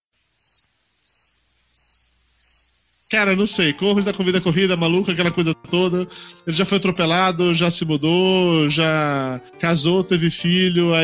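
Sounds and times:
crickets chirping: 0:00.1 - 0:04.2
speech: 0:03.1 - 0:11.0.

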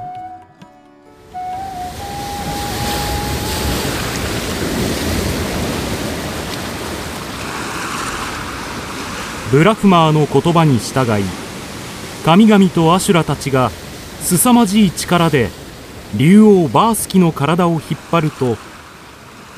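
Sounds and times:
faint rising tone: 0:01.1 - 0:04.4
stormy ocean waves churning and surging: 0:01.2 - 0:19.5
speech: 0:09.5 - 0:11.4, 0:12.2 - 0:18.7.

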